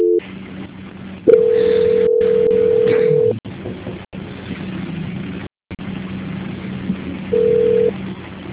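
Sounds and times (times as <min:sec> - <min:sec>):
telephone line beeps during a call transfer: 0:00.0 - 0:00.2, 0:01.3 - 0:03.3
low telephone line hum: 0:00.0 - 0:08.5.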